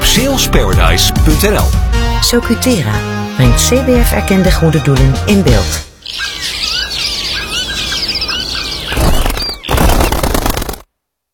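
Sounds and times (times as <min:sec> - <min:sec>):
speech: 0:00.2 - 0:06.4
dense flock of small birds chirping and twittering: 0:03.2 - 0:10.8
loud burst of flapping wings of birds flying off: 0:06.0 - 0:10.9.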